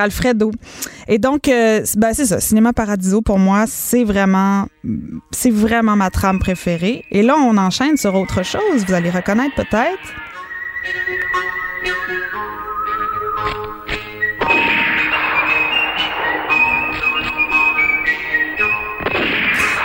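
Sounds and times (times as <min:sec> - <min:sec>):
speech: 0:00.0 - 0:12.6
dramatic western-style orchestral theme music: 0:10.0 - 0:19.8
whip-like cracks: 0:14.4 - 0:18.2, 0:19.0 - 0:19.8.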